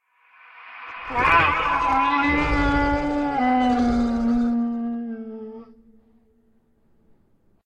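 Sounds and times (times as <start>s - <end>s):
hounds roaring: 1.1s - 5.7s.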